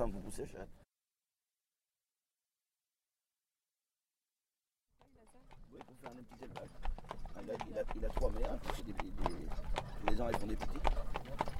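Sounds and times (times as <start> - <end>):
speech: 0.0 - 0.8, 5.7 - 11.2
horse hooves clip-clopping: 5.0 - 11.5
voices murmuring: 5.4 - 11.5.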